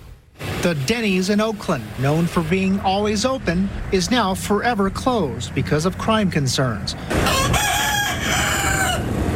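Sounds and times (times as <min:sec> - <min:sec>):
speech: 0:00.6 - 0:07.7
rooster crowing: 0:07.1 - 0:09.2.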